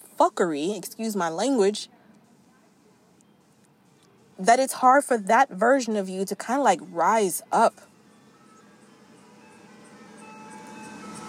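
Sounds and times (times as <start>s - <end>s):
speech: 0.2s - 2.0s, 4.4s - 7.9s
ice cream truck faint tinkling tones: 7.9s - 11.2s.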